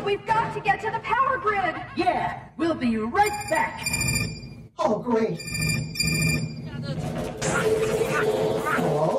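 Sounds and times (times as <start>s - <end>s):
speech: 0.1s - 9.1s
telephone ringing: 3.2s - 4.7s, 5.4s - 7.2s.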